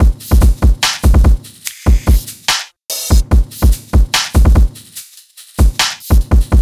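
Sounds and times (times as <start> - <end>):
hip hop drum loop: 0.0 - 6.6.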